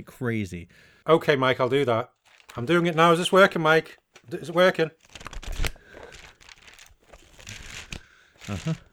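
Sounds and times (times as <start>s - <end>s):
speech: 0.0s - 5.2s, 8.5s - 8.9s
paper pages being turned: 2.2s - 8.9s.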